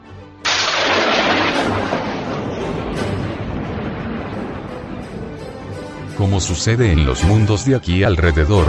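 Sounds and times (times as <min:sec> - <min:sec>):
thunder crash rolling into a sustained rumble: 0:00.5 - 0:06.0
speech: 0:06.2 - 0:08.6.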